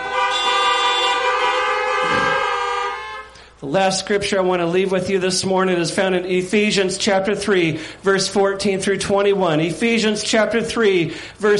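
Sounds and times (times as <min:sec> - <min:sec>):
several car horns honking: 0:00.0 - 0:03.6
speech: 0:03.6 - 0:11.5.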